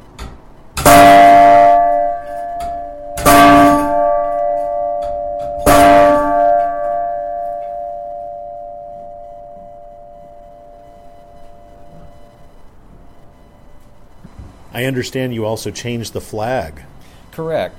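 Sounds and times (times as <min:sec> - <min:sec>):
metallic bell ringing on the hour: 0:00.9 - 0:12.3
speech: 0:14.8 - 0:17.7.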